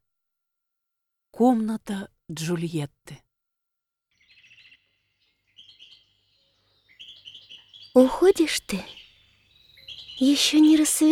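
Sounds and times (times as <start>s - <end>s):
speech: 1.4s - 3.2s, 8.0s - 9.0s, 10.2s - 11.0s
nightingale singing at night in a pomegranate tree: 4.1s - 11.0s.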